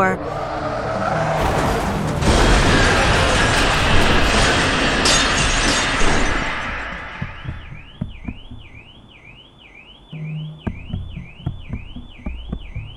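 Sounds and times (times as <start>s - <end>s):
speech: 0.0s - 0.5s
loud car crash: 0.3s - 7.8s
debris clattering: 1.3s - 8.4s
glass shattering: 1.4s - 7.7s
warbling car alarm: 6.8s - 12.9s.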